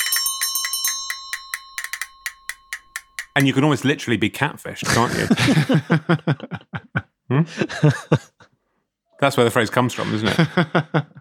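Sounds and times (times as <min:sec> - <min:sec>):
small bell rung rapidly: 0:00.0 - 0:03.6
speech: 0:03.4 - 0:08.3, 0:09.2 - 0:11.1
laughter: 0:04.8 - 0:08.5, 0:09.7 - 0:11.1.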